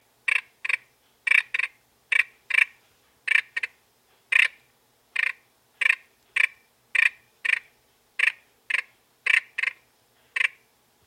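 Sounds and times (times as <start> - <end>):
Sauter's frog calling: 0.3 - 4.6, 5.2 - 10.6.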